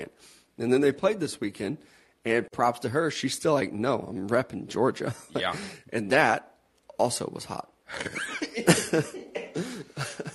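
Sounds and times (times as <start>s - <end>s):
speech: 0.1s - 10.1s
person coughing: 5.4s - 5.8s, 8.6s - 10.3s
breathy laughter: 8.0s - 10.3s.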